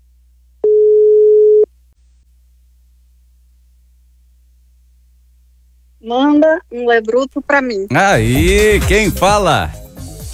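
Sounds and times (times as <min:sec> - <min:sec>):
telephone ringback tone on an outgoing call: 0:00.6 - 0:01.7
speech: 0:06.1 - 0:09.8.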